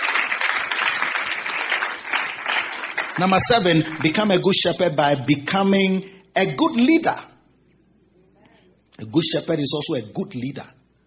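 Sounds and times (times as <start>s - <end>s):
audience clapping during a church sermon: 0.0s - 4.5s
speech: 3.2s - 7.3s, 9.0s - 10.8s.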